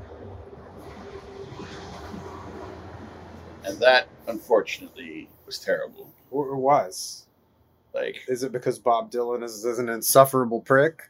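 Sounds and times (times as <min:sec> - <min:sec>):
train rumbling past with rattling wheels: 0:00.0 - 0:06.0
speech: 0:03.7 - 0:07.2, 0:07.9 - 0:11.0.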